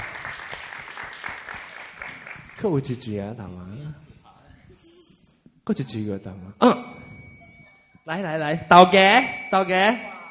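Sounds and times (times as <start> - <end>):
audience clapping hands: 0.0 - 3.0
speech: 2.6 - 4.1, 5.7 - 6.9, 8.0 - 10.2.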